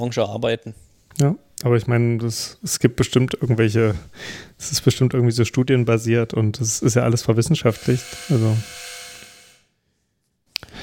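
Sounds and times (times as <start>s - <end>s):
speech: 0.0s - 8.9s
harsh electric doorbell buzzing: 7.6s - 9.7s.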